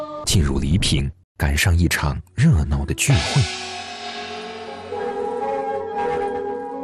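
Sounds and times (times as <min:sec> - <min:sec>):
speech: 0:00.3 - 0:03.8
lusheng pipes playing reedy sustained chords: 0:02.9 - 0:06.8
festival drums: 0:03.0 - 0:06.8
festival gongs: 0:03.1 - 0:06.8.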